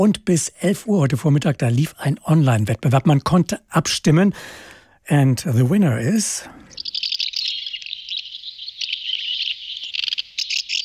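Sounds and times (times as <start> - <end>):
speech: 0.0 - 6.6
house martins chattering: 6.0 - 10.8.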